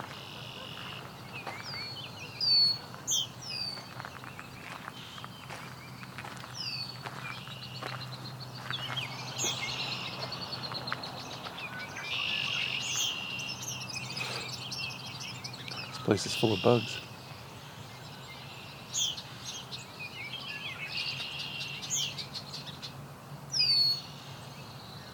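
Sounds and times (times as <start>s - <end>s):
female Baltimore Oriole singing high chirping phrases: 0.0s - 25.1s
steady outdoor hum: 0.0s - 25.1s
speech: 16.1s - 17.0s.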